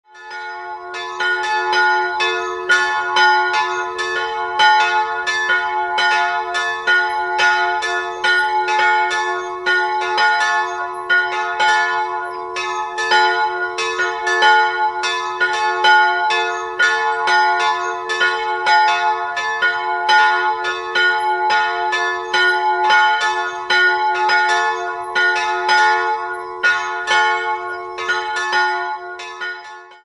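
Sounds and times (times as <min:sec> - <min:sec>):
bells ringing in Oberhofen: 0:00.1 - 0:30.0.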